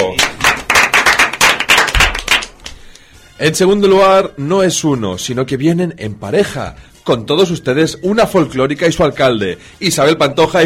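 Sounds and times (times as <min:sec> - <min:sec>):
small group applauding: 0:00.0 - 0:02.8
speech: 0:03.4 - 0:10.6.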